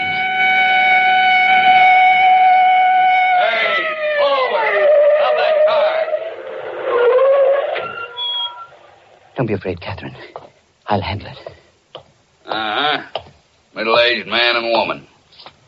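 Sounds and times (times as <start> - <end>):
police car siren wailing: 0.0 - 8.7
speech: 9.4 - 11.6, 13.8 - 15.1.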